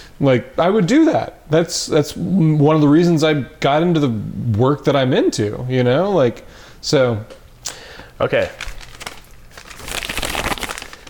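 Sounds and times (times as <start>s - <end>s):
speech: 0.2s - 8.7s
paper being ruffled and crinkled: 8.4s - 11.0s.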